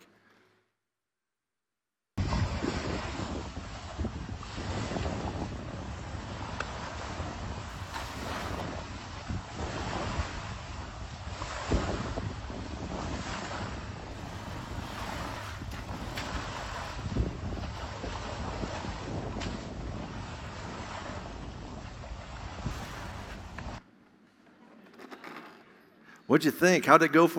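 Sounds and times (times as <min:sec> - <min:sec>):
ocean surf roaring against the shore: 0:02.2 - 0:23.8
strong wind buffeting the microphone: 0:02.2 - 0:23.8
speech: 0:26.3 - 0:27.3.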